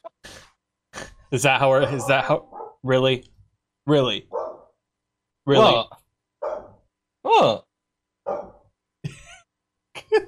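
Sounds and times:
speech: 1.3 - 3.3, 3.9 - 4.4, 5.5 - 6.0
dog barking indoors: 1.8 - 2.8, 4.3 - 4.7, 6.4 - 6.7, 8.3 - 8.6.

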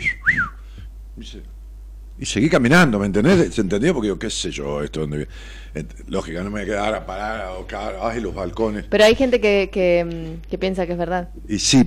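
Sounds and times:
person whistling: 0.0 - 0.7
speech: 1.2 - 1.6, 2.2 - 11.8.

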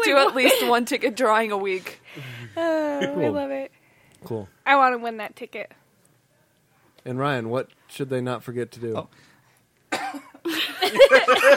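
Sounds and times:
speech: 0.1 - 5.8, 7.0 - 9.3, 9.9 - 11.5
coughing after choking on air: 9.9 - 10.4
laughter: 10.5 - 11.5.

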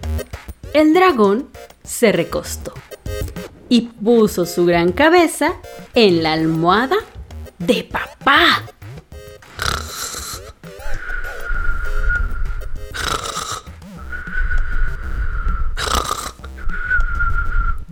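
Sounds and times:
speech: 0.8 - 2.8, 3.7 - 8.7
voice imitating loud rasping snores: 9.5 - 10.6, 12.9 - 13.8, 15.8 - 16.6
long thin whistling breath: 10.8 - 12.4, 14.0 - 17.8.

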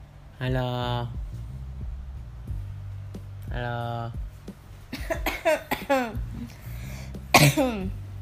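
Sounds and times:
speech: 0.4 - 1.2, 3.5 - 4.3, 5.1 - 6.3, 7.4 - 8.0
person coughing: 4.9 - 6.2, 7.3 - 7.9.

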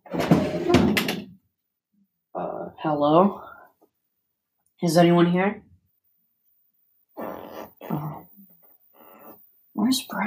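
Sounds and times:
house door rattling scrape as it swings: 0.0 - 1.3
speech: 2.8 - 3.5, 4.8 - 5.7, 9.8 - 10.2.

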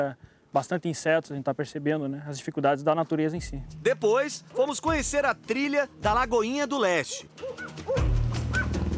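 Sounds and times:
speech: 0.0 - 8.1
trained firefighters' rescue dog giving short high yipping barks: 7.1 - 8.8.

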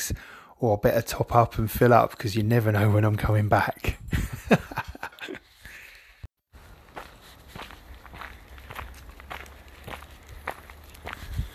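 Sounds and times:
speech: 0.0 - 4.8
laughter: 4.1 - 5.5
footsteps of a dog walker walking beagles in Highwoods, Colchester, Essex, UK: 6.5 - 11.5.

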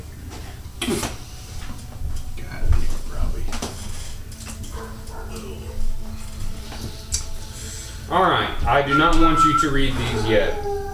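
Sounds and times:
steady low hum: 0.0 - 10.9
dogs barking: 4.4 - 6.9, 8.9 - 10.9
speech: 8.1 - 10.7.

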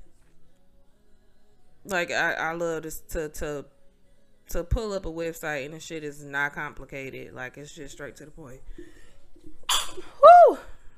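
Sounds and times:
speech: 1.8 - 3.8, 4.5 - 9.0
person sneezing: 9.7 - 10.1.

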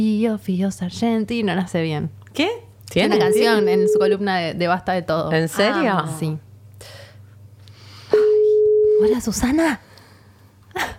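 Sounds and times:
speech: 0.0 - 7.0, 9.0 - 9.8
telephone call tone while calling someone: 3.1 - 4.2, 8.2 - 9.1.

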